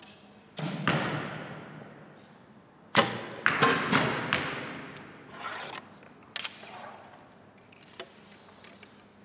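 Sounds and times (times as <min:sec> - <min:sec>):
arrows shot into an archery target: 0:00.6 - 0:01.6, 0:02.9 - 0:04.9.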